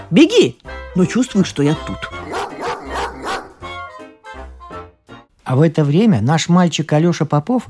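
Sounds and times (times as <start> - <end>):
speech: 0.1 - 2.1, 5.5 - 7.6
dog barking angrily with sharp growly barks: 2.2 - 3.8.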